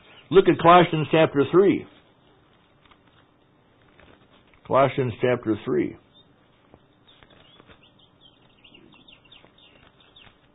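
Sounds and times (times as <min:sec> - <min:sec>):
soft hiss: 0:00.0 - 0:10.5
speech: 0:00.3 - 0:01.9, 0:04.7 - 0:06.0
bird chirping outside the window: 0:06.0 - 0:10.5.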